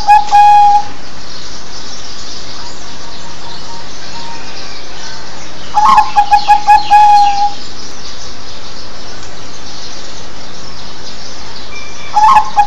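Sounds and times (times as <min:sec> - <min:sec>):
zebra dove cooing song: 0:00.0 - 0:00.9, 0:05.7 - 0:07.6, 0:12.1 - 0:12.6.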